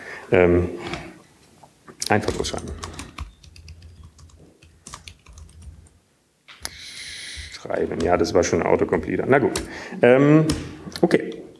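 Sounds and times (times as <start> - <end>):
speech: 0.3 - 1.0, 2.1 - 3.0, 7.7 - 11.3
typing on a computer keyboard in the Emacs editor: 2.3 - 5.9.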